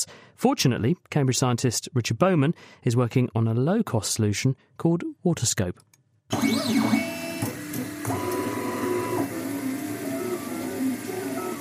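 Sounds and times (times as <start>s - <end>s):
speech: 0.0s - 7.1s
3D printer motors giving high warbling tones: 6.3s - 11.6s.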